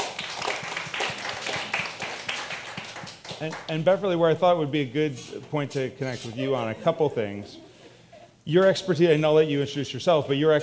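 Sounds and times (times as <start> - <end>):
audience applauding: 0.0 - 3.7
speech: 3.4 - 7.7, 8.5 - 10.6
laughter: 6.0 - 9.2.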